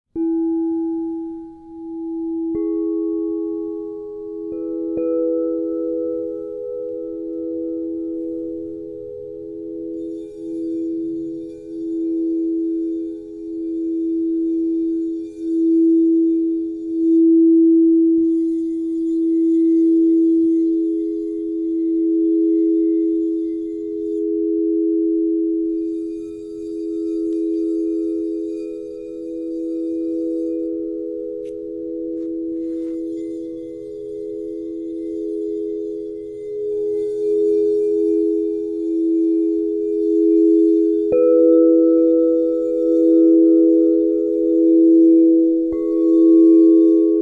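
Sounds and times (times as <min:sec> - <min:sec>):
B E G crystal tones harmonic singing bowl set ringing: 0:00.1 - 0:47.2.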